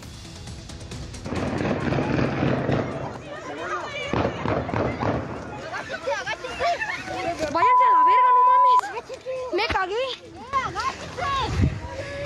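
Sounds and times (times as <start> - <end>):
gunshots fired in front of a school in Tonalá Jalisco Mexico: 1.2 - 3.2, 4.0 - 5.7
laughter: 1.8 - 9.7
commotion of agitated voices and shouting: 1.8 - 12.2.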